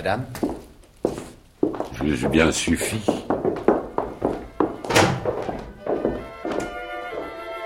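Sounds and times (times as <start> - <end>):
speech: 0.0 - 0.4, 2.0 - 3.3
heavy wooden doors being opened: 2.0 - 7.3.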